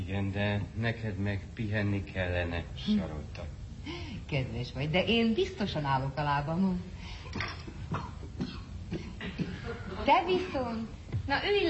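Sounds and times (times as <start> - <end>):
speech: 0.1 - 8.1, 10.1 - 11.6
person with a persistent cough coughing: 7.9 - 10.0.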